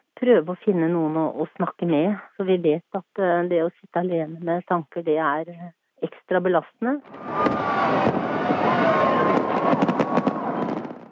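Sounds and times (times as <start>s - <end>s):
speech: 0.2s - 10.0s
sharp bangs: 7.0s - 11.0s
New Year's Eve fireworks popping and crackling in the sky: 7.2s - 11.0s.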